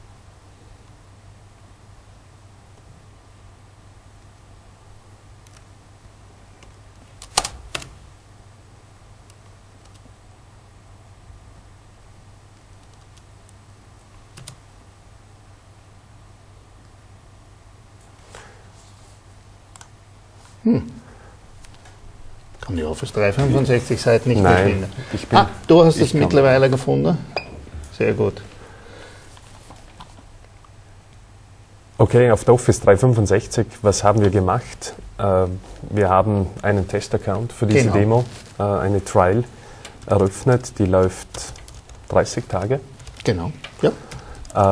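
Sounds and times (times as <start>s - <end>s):
computer mouse clicks: 5.4s - 5.7s, 9.2s - 10.1s, 12.6s - 14.6s, 19.7s - 20.0s, 21.6s - 21.9s, 44.1s - 44.7s
keyboard typing: 6.6s - 7.9s, 9.3s - 10.1s, 12.6s - 14.6s, 39.8s - 44.7s
speech: 20.6s - 21.0s, 22.7s - 27.3s, 28.0s - 28.5s, 32.0s - 44.7s.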